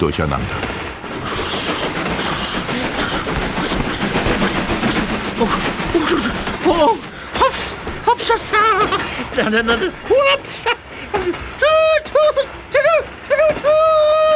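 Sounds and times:
speech: 0:00.0 - 0:01.4, 0:05.4 - 0:07.1, 0:08.3 - 0:12.5
train clattering and rattling along a rough bumpy uneven track: 0:00.0 - 0:14.3
laughter: 0:02.1 - 0:13.7.

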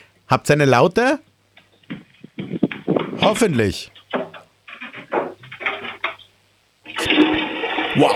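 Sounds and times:
speech: 0:00.3 - 0:01.3, 0:03.2 - 0:04.0, 0:08.0 - 0:08.1
clattering handling noises: 0:01.5 - 0:06.4
toilet flush: 0:06.9 - 0:08.1.

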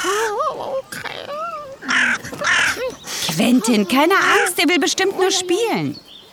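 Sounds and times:
black crow cawing: 0:00.9 - 0:04.6
speech: 0:03.4 - 0:06.1.

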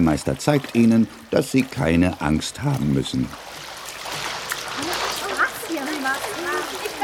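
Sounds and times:
speech: 0:00.0 - 0:03.7
water splashing as children paddle and swim in a non-swimmer pool: 0:00.0 - 0:07.0
children's voices calling and chattering: 0:04.7 - 0:07.0.

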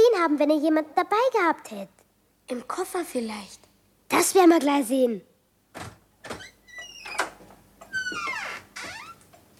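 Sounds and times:
speech: 0:00.2 - 0:06.0
door creaking while being closed quietly: 0:05.8 - 0:09.5.

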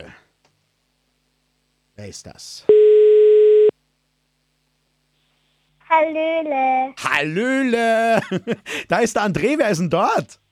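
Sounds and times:
speech: 0:02.0 - 0:02.7, 0:05.9 - 0:10.4
steady telephone ringing tone: 0:02.7 - 0:03.7.

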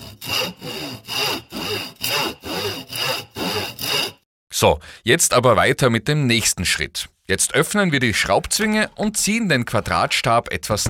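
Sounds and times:
hand saw cutting a square wooden rod: 0:00.0 - 0:04.2
speech: 0:04.6 - 0:10.8.

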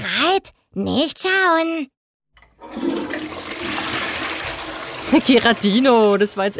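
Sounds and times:
speech: 0:00.4 - 0:02.0, 0:05.1 - 0:06.5
toilet flushing: 0:02.4 - 0:06.5.

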